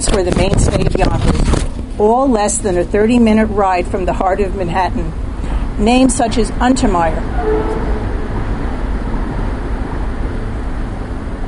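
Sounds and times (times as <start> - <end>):
speech: 0.2 - 1.3, 2.0 - 5.2, 5.8 - 8.0
train rumbling past: 3.3 - 11.4.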